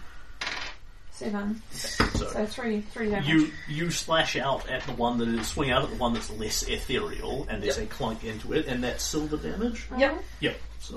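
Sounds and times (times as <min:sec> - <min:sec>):
ten-sided die rattling on a hard tabletop: 0:00.4 - 0:00.8
speech: 0:01.2 - 0:10.9.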